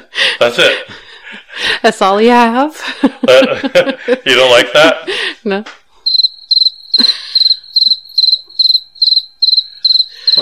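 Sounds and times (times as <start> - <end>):
speech: 0.4 - 1.0, 1.8 - 5.8
laughter: 2.8 - 5.4
crickets chirping: 6.0 - 10.3.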